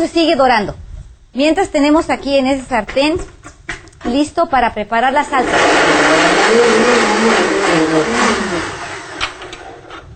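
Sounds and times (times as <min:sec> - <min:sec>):
speech: 0:00.0 - 0:03.4, 0:04.0 - 0:08.8
blender motor liquefying tomatoes for a sauce: 0:05.1 - 0:09.9.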